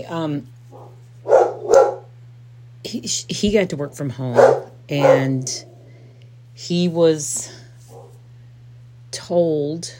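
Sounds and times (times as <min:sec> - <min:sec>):
speech: 0:00.0 - 0:00.6, 0:02.8 - 0:05.7, 0:06.6 - 0:07.6, 0:09.2 - 0:09.9
steady low hum: 0:00.0 - 0:09.9
dog barking across the street: 0:00.7 - 0:02.1, 0:04.3 - 0:05.8, 0:07.9 - 0:08.2.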